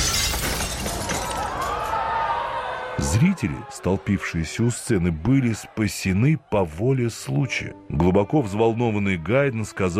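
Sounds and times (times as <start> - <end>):
chandelier crashing down: 0.0 - 1.4
tinkling glass shards settling: 0.0 - 1.7
chandelier glass shattering: 0.0 - 1.9
speech: 3.2 - 9.9.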